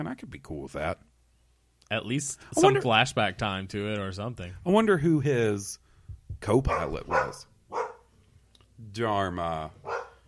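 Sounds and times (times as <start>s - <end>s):
speech: 0.0s - 1.1s, 1.9s - 7.8s, 8.8s - 10.0s
faint hum: 0.0s - 10.2s
dog barking: 6.7s - 8.1s, 9.8s - 10.2s.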